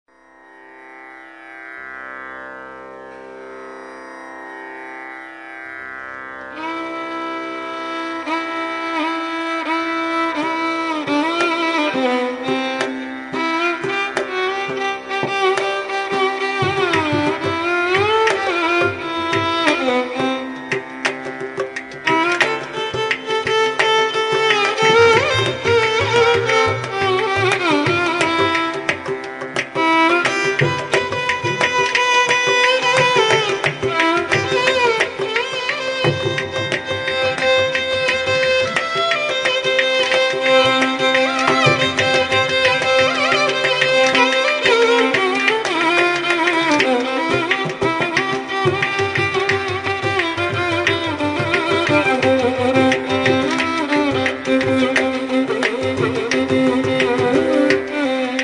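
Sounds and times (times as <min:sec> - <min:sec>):
rhythmic romantic violin in raga Behag: 0:00.7 - 0:58.4.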